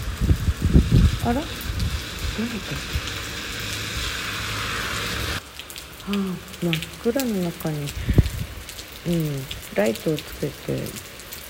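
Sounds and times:
low rumble: 0.0 - 5.4
steady rain falling: 0.0 - 11.4
speech: 1.2 - 1.7, 2.4 - 3.1, 6.1 - 8.2, 9.0 - 11.1.

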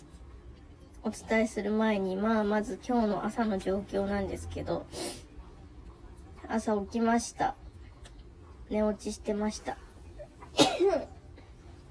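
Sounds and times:
speech: 1.0 - 5.2, 6.5 - 7.6, 8.7 - 9.8
sneeze: 10.6 - 11.1.

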